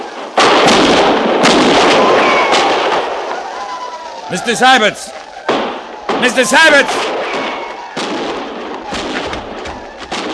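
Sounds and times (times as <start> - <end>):
gunfire from a battle in a canyon: 0.0 - 3.4, 5.5 - 10.3
speech: 4.3 - 5.2, 6.2 - 7.2.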